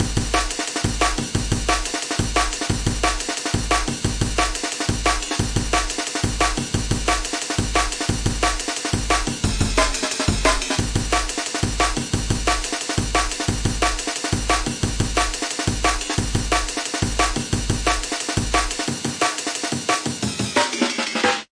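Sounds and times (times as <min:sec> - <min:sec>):
drums: 0:00.0 - 0:21.5.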